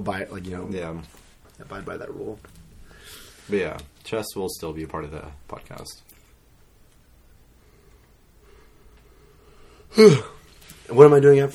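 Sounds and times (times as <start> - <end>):
speech: 0.0 - 6.1, 9.9 - 11.5
person yawning: 9.9 - 10.4.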